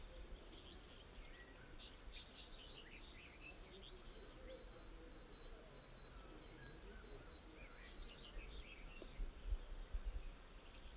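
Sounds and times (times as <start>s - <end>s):
birds chirping and trilling: 0.0s - 10.9s
insects humming: 0.4s - 9.2s.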